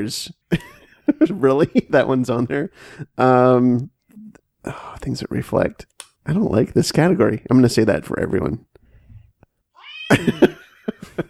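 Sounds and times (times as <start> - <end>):
speech: 0.0 - 3.9, 4.6 - 8.7, 10.1 - 11.2
cat meowing: 9.8 - 10.4
laughter: 10.1 - 11.2.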